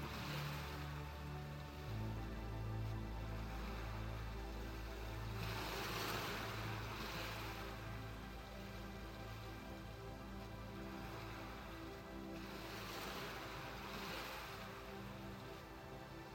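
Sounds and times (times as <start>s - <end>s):
ocean waves washing onto the shore of a beach: 0.0s - 16.3s.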